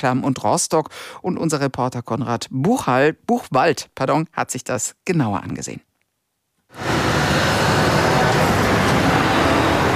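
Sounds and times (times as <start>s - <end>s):
speech: 0.0s - 5.9s
trucks arriving at a sugar factory: 6.8s - 9.9s.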